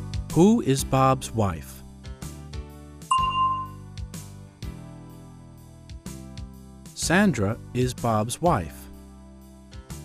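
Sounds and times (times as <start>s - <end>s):
soft steady musical backing with light rhythmic beats: 0.0s - 10.0s
speech: 0.4s - 1.8s, 7.1s - 8.8s
bell chime cueing an answer in an English lesson: 3.1s - 3.8s.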